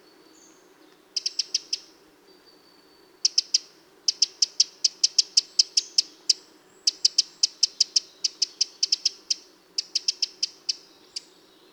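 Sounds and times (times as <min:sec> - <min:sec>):
Eurasian wren Troglodytes troglodytes ticking calls: 0:01.2 - 0:01.9, 0:03.2 - 0:06.1, 0:06.9 - 0:11.3.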